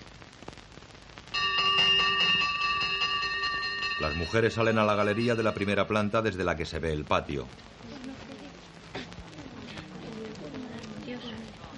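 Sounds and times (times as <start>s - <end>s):
corridor bell rung by a nun in a convent: 1.3s - 6.4s
speech: 4.0s - 8.0s.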